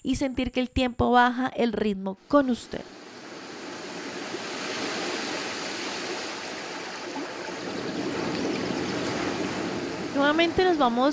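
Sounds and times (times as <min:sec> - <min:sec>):
speech: 0:00.0 - 0:03.0, 0:10.2 - 0:11.1
broad wash of sea waves: 0:02.2 - 0:11.1
flowing river: 0:02.5 - 0:11.1.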